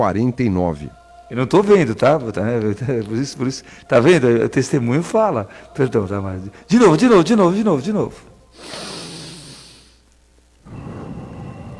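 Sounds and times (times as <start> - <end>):
speech: 0.0 - 9.0
airy breathing into a microphone: 3.6 - 3.9, 5.5 - 5.8, 8.2 - 11.7.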